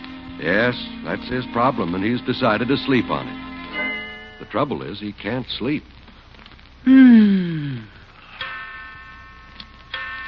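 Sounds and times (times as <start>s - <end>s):
speech: 0.4s - 3.5s, 4.4s - 6.0s, 6.8s - 7.4s
clock striking the hour: 8.4s - 10.2s.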